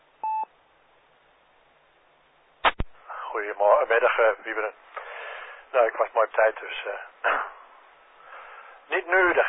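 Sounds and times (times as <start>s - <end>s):
faint hiss: 0.0s - 9.4s
mobile phone beep: 0.2s - 0.5s
speech: 3.4s - 4.9s, 5.7s - 7.5s, 8.9s - 9.4s.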